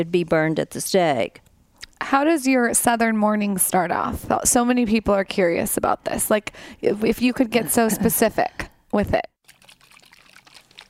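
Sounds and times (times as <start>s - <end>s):
speech: 0.0s - 1.4s, 2.1s - 9.3s
mushroom focus shot with lion's mane and chaga pouring in a soft trickle: 9.4s - 10.8s.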